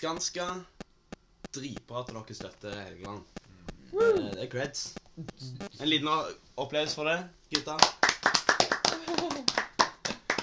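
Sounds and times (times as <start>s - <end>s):
speech: 0.0s - 0.8s, 1.5s - 8.0s
voice murmuring: 5.2s - 5.9s
short burst of hand clapping: 7.6s - 10.4s.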